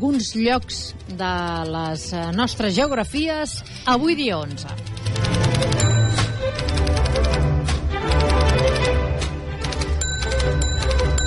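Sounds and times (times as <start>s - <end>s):
speech: 0.0s - 6.3s
typewriter typing: 0.1s - 9.0s, 9.6s - 11.2s
typewriter bell ding: 2.3s - 3.5s, 5.7s - 7.0s, 10.0s - 11.2s.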